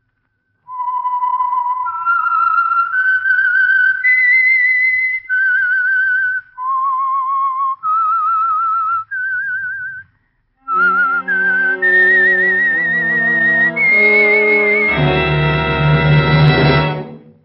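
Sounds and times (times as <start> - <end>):
lone clear whistled melody with vibrato: 0.7 - 17.2
full orchestra playing a brassy tune: 10.6 - 17.4.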